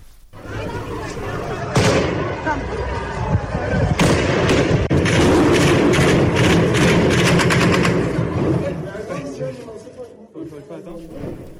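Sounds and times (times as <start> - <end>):
people shouting at street protest: 0.4 - 4.8
loud chaotic crowd at street protest: 0.4 - 11.5
bursts of rapid gunfire during street protest: 4.0 - 8.7.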